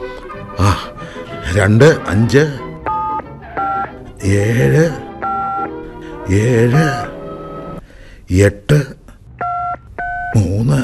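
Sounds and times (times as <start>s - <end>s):
person talking: 0.6s - 2.7s, 4.2s - 5.1s, 6.2s - 7.2s, 8.3s - 9.2s, 10.3s - 10.8s
touch-tone keypad beeps as a telephone number is dialled: 2.8s - 3.9s, 5.2s - 5.7s, 9.4s - 10.8s.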